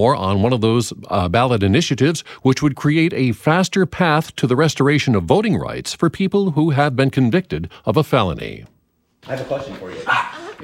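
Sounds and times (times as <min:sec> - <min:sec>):
speech: 0:00.0 - 0:10.6
dog barking in a tidy home living room: 0:10.0 - 0:10.6.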